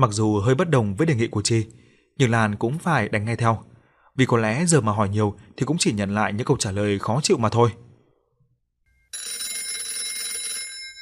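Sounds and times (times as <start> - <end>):
speech: 0.0 - 7.8
electronic alarm clock ringing: 8.9 - 11.0.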